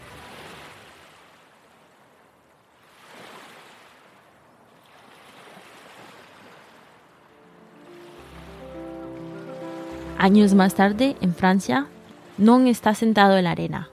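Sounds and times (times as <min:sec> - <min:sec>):
ocean waves washing onto a beach: 0:00.0 - 0:13.9
sustained musical tones: 0:07.1 - 0:13.9
speech: 0:10.2 - 0:13.9.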